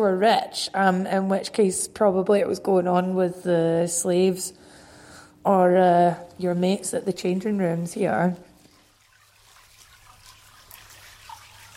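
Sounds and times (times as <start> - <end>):
speech: 0.0 - 4.7, 5.4 - 8.5
water from a sacred spring flowing and trickling: 6.2 - 11.7.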